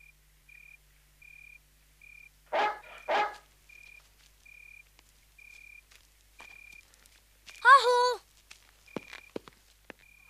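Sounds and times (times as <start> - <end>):
dog barking: 2.5 - 3.5.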